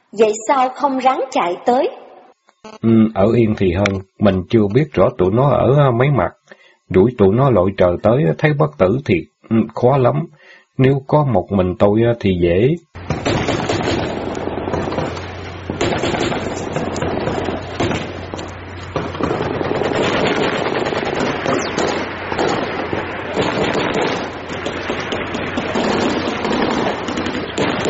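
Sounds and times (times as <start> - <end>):
speech: 0.1 - 2.0, 2.6 - 12.9
machine-gun-like gunfire sound effect: 13.0 - 27.8.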